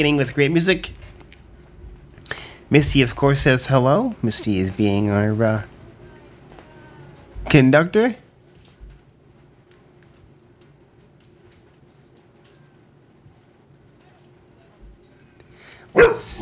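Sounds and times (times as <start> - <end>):
speech: 0.0 - 1.1, 2.7 - 5.7, 7.5 - 8.2
low hum: 0.0 - 16.4
dog barking: 15.9 - 16.4.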